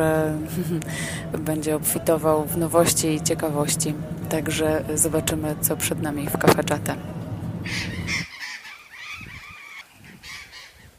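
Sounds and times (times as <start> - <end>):
speech: 0.0 - 7.9
low rumble of noise: 0.0 - 8.3
large flock of parrots squawking and screeching in trees lining an avenue: 7.6 - 10.9.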